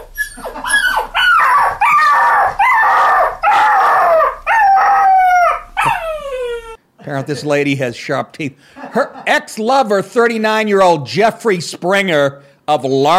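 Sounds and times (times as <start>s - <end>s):
dog howling and yowling loudly: 0.0s - 6.8s
speech: 7.2s - 13.1s.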